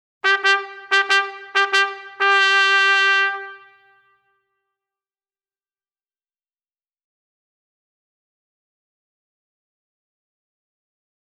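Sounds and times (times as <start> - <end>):
bugle call: 0.2 - 4.1.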